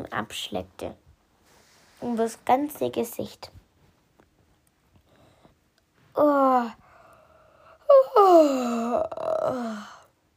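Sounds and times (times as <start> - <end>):
speech: 0.0 - 1.0, 2.0 - 3.6, 6.2 - 6.8, 7.9 - 10.0
drawn-out yawn acted out by a voice: 6.2 - 10.1.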